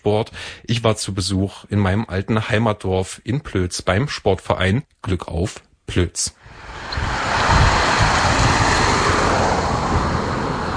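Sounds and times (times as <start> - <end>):
speech: 0.0 - 6.7
steady wind blowing outdoors in Oberplötz: 6.4 - 10.7.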